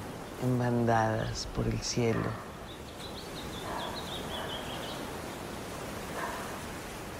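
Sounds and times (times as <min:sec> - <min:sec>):
ocean waves breaking on a beach: 0:00.0 - 0:07.1
speech: 0:00.4 - 0:02.5
bird chirping: 0:01.6 - 0:05.5.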